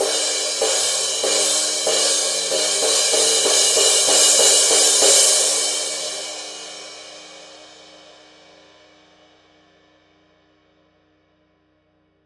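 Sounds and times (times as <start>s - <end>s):
wild crash cymbal pattern on a Paiste Rude cymbal: 0.0s - 8.2s.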